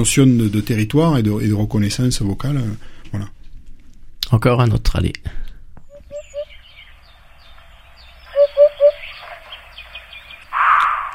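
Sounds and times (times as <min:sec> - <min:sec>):
speech: 0:00.0 - 0:03.4, 0:04.3 - 0:05.4
birds chirping: 0:05.8 - 0:11.1
Eurasian hoopoe giving hollow triple hoots: 0:05.9 - 0:06.6, 0:08.2 - 0:11.1.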